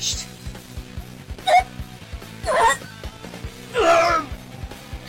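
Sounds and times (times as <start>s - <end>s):
person vocalizing: 1.4s - 1.7s, 2.4s - 3.0s, 3.8s - 4.3s.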